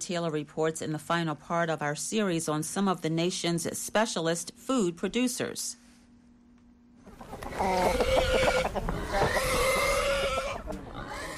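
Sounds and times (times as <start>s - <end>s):
speech: 0.1s - 5.8s, 7.5s - 9.3s
chickens clucking on a farm: 7.0s - 11.3s
pigs grunting and squealing in a scuffle on a farm: 7.5s - 11.3s.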